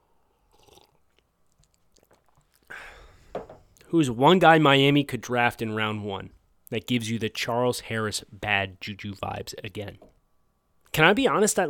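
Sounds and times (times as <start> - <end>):
person sipping a drink: 0.3 - 3.9
slurp: 0.5 - 2.7
speech: 3.9 - 10.1, 10.9 - 11.6.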